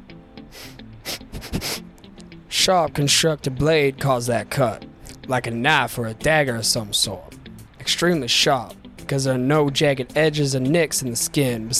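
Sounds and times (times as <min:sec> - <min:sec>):
quick breathy sniffs at a corpse: 0:00.5 - 0:01.9
speech: 0:02.6 - 0:07.3, 0:07.9 - 0:11.7.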